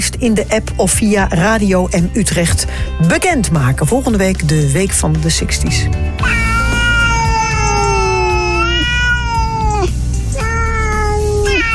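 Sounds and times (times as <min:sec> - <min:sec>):
speech: 0:00.1 - 0:06.5
cat meowing in long drawn-out wails: 0:06.2 - 0:11.7.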